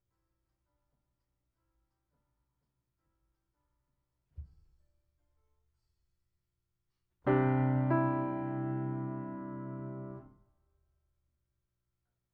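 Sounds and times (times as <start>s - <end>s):
piano: 7.2s - 10.4s.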